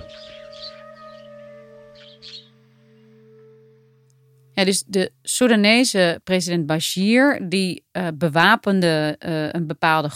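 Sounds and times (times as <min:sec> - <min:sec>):
small birds chirping in a destroyed village: 0:00.0 - 0:03.4
speech: 0:04.6 - 0:10.1.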